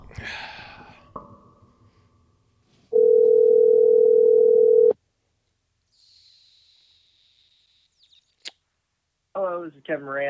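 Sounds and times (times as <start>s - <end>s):
phone ringback tone: 2.9s - 5.0s.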